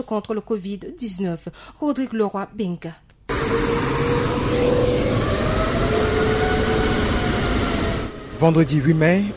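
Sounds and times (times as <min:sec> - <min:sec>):
speech: 0:00.0 - 0:05.5, 0:08.4 - 0:09.3
Airbus A330 airliner landing on tarmac: 0:03.3 - 0:09.3.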